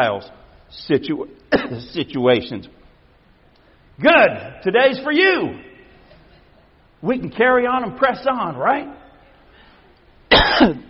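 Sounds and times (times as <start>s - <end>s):
speech: 0.0s - 2.8s, 4.0s - 5.7s, 7.0s - 9.0s, 10.5s - 10.8s
single loud throaty cough: 1.5s - 1.9s, 10.3s - 10.8s.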